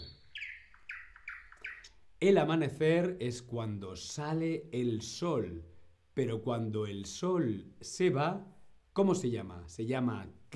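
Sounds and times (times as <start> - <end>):
birds singing at dawn with bright clear chirping notes: 0.0 - 2.0
speech: 2.2 - 10.5.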